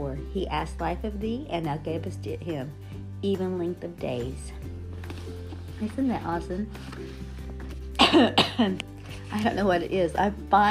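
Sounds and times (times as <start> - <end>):
speech: 0.2 - 4.8, 5.8 - 7.2, 8.1 - 10.6
raspy cough or throat-clearing: 8.0 - 8.8.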